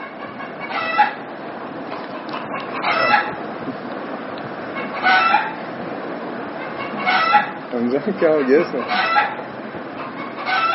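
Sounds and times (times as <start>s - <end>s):
rooster crowing and clucking: 0.0s - 1.3s, 2.0s - 3.4s, 4.7s - 5.7s, 6.5s - 7.7s, 8.7s - 10.7s
steady hiss: 0.0s - 10.7s
speech: 7.8s - 9.3s.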